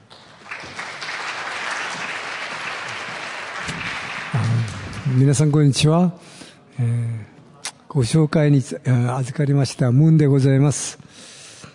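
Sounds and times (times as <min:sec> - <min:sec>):
audience applause welcoming a speaker: 0:00.0 - 0:05.6
speech: 0:05.1 - 0:07.1, 0:07.9 - 0:11.0.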